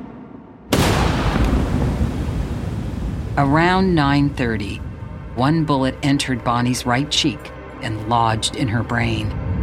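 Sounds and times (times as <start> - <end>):
distant fireworks booming: 0.6 - 3.8
speech: 3.4 - 9.4.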